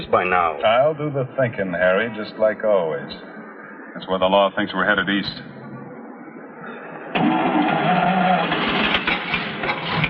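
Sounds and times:
speech: 0:00.1 - 0:03.4, 0:04.0 - 0:05.6
car engine being cranked, failing to start: 0:07.2 - 0:10.0.

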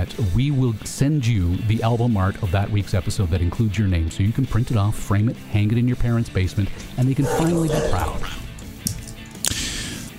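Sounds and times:
speech: 0:00.0 - 0:08.5
dogs barking and yipping outside: 0:06.4 - 0:08.8.

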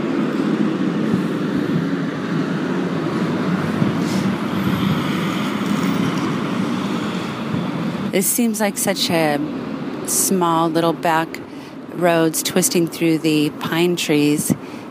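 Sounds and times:
big concrete trucks driving past on a back road through pine trees: 0:00.0 - 0:12.6
speech: 0:08.2 - 0:11.4, 0:12.0 - 0:14.8.

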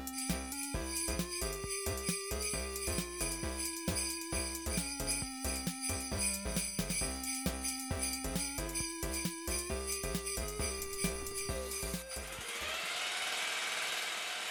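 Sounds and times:
tinkling rhythmic tune: 0:00.0 - 0:12.6
power drill boring into cement: 0:12.2 - 0:14.4.

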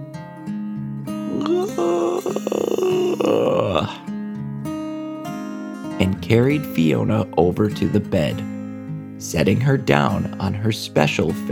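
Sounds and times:
narrator performing a drawn-out yawn: 0:01.2 - 0:04.0
speech: 0:01.4 - 0:04.0, 0:06.3 - 0:08.6, 0:09.2 - 0:11.5
soft steady music: 0:03.4 - 0:11.5.

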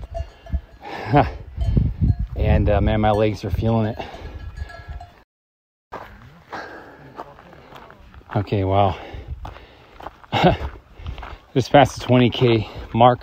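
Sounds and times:
cow bells clanking on grazing cows on a high mountain pasture: 0:00.0 - 0:05.2
speech: 0:01.1 - 0:01.4, 0:02.4 - 0:04.2, 0:08.4 - 0:09.1, 0:10.4 - 0:10.7, 0:11.6 - 0:13.2.

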